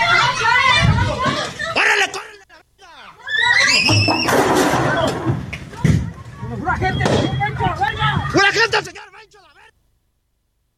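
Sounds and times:
children screaming in fear: 0.0s - 2.2s, 2.8s - 9.7s
loud chaotic noise: 0.0s - 9.8s
woman screaming in fear: 3.0s - 4.0s.

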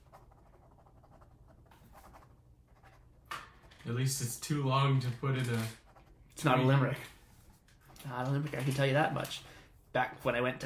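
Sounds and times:
writing scratching on paper as something is jotted down: 0.0s - 3.0s
speech: 3.9s - 5.8s, 6.4s - 7.2s, 8.0s - 10.6s.

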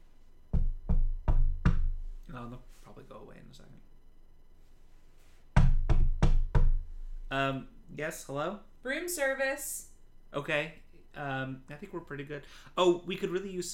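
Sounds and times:
firm knocking on a door: 0.5s - 2.1s, 5.6s - 6.9s
speech: 2.4s - 3.9s, 7.3s - 13.7s.

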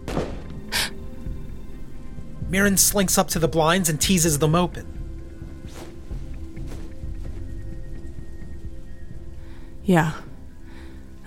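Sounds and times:
muffled gunshot from the street: 0.0s - 0.7s
low steady background: 0.0s - 11.2s
speech: 2.5s - 5.0s, 9.9s - 10.3s.

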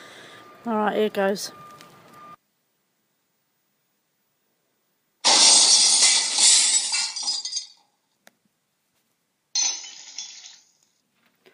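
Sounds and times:
brief tone: 0.3s - 5.2s
speech: 0.6s - 1.6s
house window smashed by hand wrapped in a tea towel: 5.2s - 7.8s, 9.6s - 10.8s
tinkling shards of window glass: 5.3s - 7.8s, 9.6s - 10.8s.

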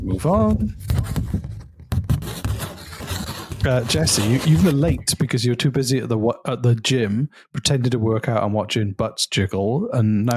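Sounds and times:
speech: 0.1s - 1.2s, 3.6s - 10.3s
paper rustling and crinkling: 0.7s - 5.0s.

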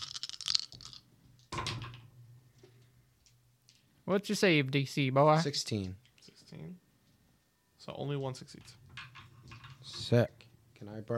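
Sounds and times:
dice rolled during a tabletop role-playing game session: 0.0s - 1.0s
speech: 4.1s - 6.8s, 7.9s - 8.8s, 10.0s - 11.1s.

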